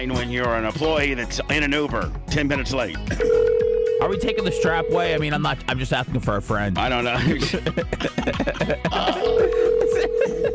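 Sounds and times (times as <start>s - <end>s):
speech: 0.0s - 3.5s, 4.1s - 9.6s
electronic ringback tone from an outgoing phone call: 3.2s - 5.3s, 9.2s - 10.5s
laughter: 7.0s - 10.5s.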